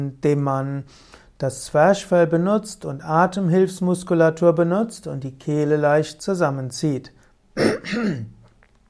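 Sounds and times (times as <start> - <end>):
speech: 0.0 - 8.4
throat clearing with guttural rasp: 7.6 - 8.4.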